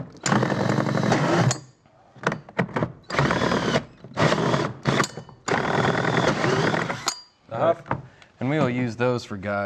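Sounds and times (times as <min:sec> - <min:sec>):
power tool cutting net-cup holes in a plastic tote: 0:00.1 - 0:01.7, 0:03.1 - 0:07.2
speech: 0:08.5 - 0:09.6.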